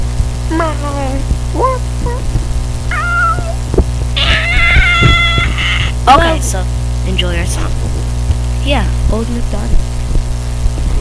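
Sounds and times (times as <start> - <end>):
steady low hum: 0.0 - 10.9
voice imitating a cat meowing: 2.9 - 3.6, 4.2 - 6.0
speech: 6.1 - 7.8, 8.6 - 9.8.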